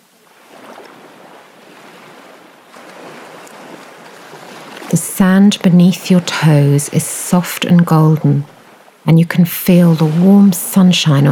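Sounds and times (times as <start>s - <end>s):
gentle waves lapping at the shore: 0.0s - 11.3s
speech: 4.9s - 11.3s.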